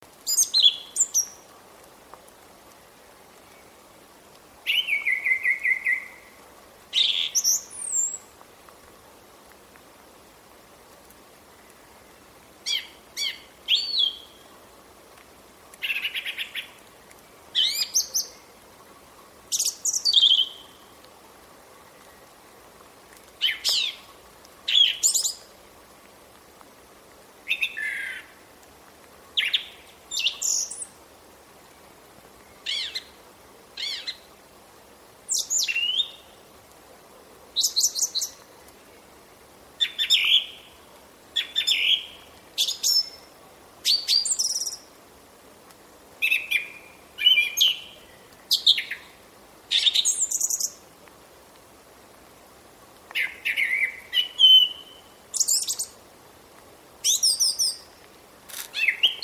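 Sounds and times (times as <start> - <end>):
song thrush singing: 0.0 - 1.5, 4.6 - 8.4, 12.6 - 14.5, 17.5 - 18.6, 19.5 - 21.0, 23.4 - 25.5, 27.4 - 28.4, 29.4 - 31.0, 32.4 - 33.2, 33.8 - 34.3, 35.3 - 36.4, 37.6 - 38.5, 39.8 - 40.8, 41.4 - 45.0, 46.2 - 50.9, 53.1 - 56.0, 57.0 - 58.1, 58.7 - 59.2.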